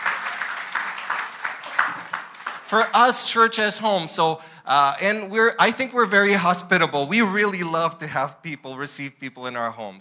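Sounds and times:
crowd applauding: 0.0 - 3.5
speech: 2.7 - 10.0.

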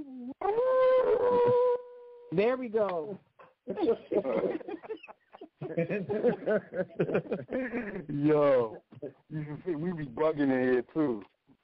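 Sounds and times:
person imitating a wolf howl: 0.0 - 2.3
speech: 2.4 - 11.3
laughter: 3.7 - 9.6.

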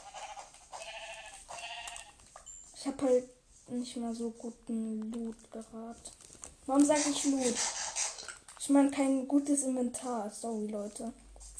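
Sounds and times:
video game sheep bleating: 0.0 - 2.2
speech: 2.8 - 7.8, 8.7 - 11.2.

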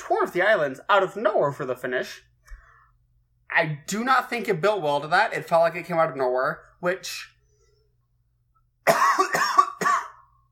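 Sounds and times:
speech: 0.3 - 2.3, 3.5 - 7.3
harsh throaty coughs: 8.8 - 10.4.

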